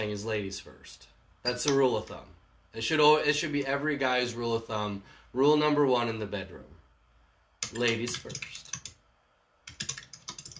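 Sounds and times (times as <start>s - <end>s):
speech: 0.0s - 6.7s, 7.6s - 8.6s
rapid typing on a computer keyboard: 7.6s - 9.0s, 9.7s - 10.5s.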